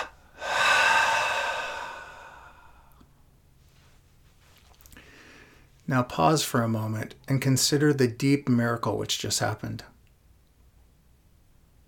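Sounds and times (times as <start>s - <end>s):
long breathy rush of air through the nostrils during a relaxation exercise: 0.0s - 3.0s
speech: 5.9s - 9.9s.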